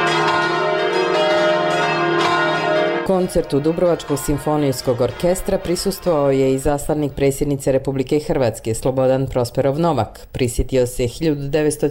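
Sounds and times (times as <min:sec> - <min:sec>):
church bells ringing in the evening: 0:00.0 - 0:07.4
speech: 0:03.1 - 0:11.8.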